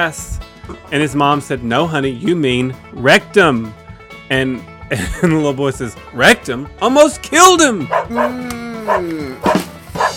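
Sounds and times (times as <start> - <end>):
speech: 0.0 - 9.6
dog barking: 7.9 - 10.1.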